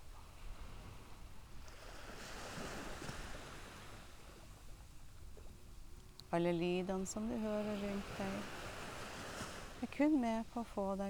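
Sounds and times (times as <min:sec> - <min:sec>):
ocean waves breaking against a beach: 0:00.4 - 0:04.7, 0:06.6 - 0:11.0
speech: 0:06.3 - 0:08.6, 0:09.8 - 0:11.0.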